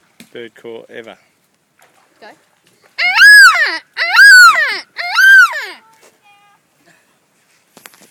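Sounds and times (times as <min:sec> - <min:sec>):
yellow-tailed black cockatoo calling with drawn-out wailing notes: 0:03.0 - 0:05.8.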